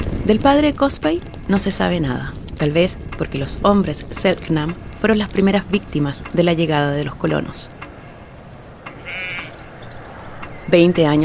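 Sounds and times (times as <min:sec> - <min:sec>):
steady outdoor hiss: 0:00.0 - 0:11.2
speech: 0:00.3 - 0:07.8, 0:10.7 - 0:11.2
sheep bleating: 0:08.9 - 0:09.6.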